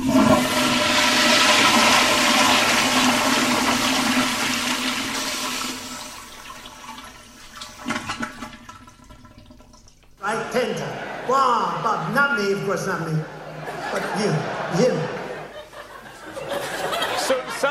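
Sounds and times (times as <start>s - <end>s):
toilet flushing: 0.0s - 10.2s
toilet water gurgling and refilling: 0.0s - 10.2s
laughter: 10.2s - 17.6s
speech: 12.4s - 13.4s, 14.2s - 15.0s.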